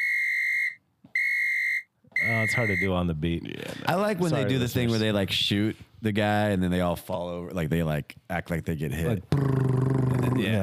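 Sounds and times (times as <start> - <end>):
whistle blown in long steady blasts: 0.0 - 2.9
speech: 2.3 - 9.8, 10.4 - 10.6.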